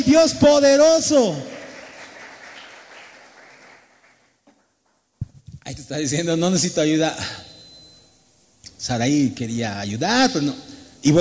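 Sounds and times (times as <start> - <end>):
speech: 0.0 - 1.6, 5.7 - 7.5, 8.8 - 11.1
audience applauding: 1.3 - 4.3.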